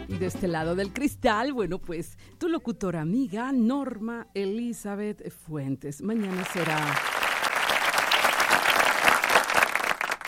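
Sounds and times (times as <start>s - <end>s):
speech: 0.2s - 7.2s
crowd applauding: 6.2s - 10.2s.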